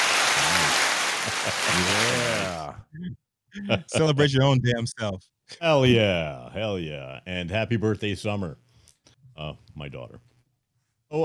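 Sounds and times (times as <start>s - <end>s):
applause sound effect played from mixer: 0.0s - 2.7s
laughter: 0.3s - 2.8s, 3.6s - 4.4s
speech: 1.4s - 8.6s, 9.4s - 10.3s.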